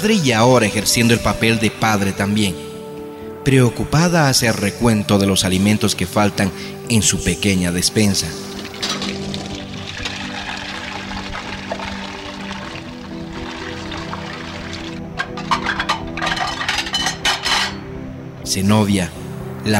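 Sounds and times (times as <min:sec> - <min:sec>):
speech: 0:00.0 - 0:02.7, 0:03.4 - 0:09.3, 0:18.5 - 0:19.7
water pouring and trickling while cups are washed: 0:08.4 - 0:16.8
water splashing: 0:08.5 - 0:15.1
dishes clattering: 0:08.8 - 0:09.3, 0:15.2 - 0:17.9.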